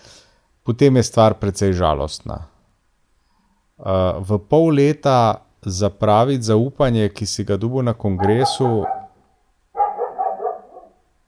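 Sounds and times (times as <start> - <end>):
speech: 0.7 - 2.5, 3.8 - 9.0
dog barking below the window: 8.2 - 9.2, 9.8 - 11.0.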